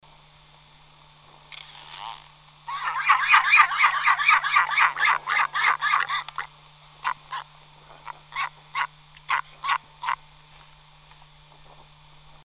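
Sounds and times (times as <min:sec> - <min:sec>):
Diomedea epomophora royal albatross calls: 0:02.7 - 0:10.2.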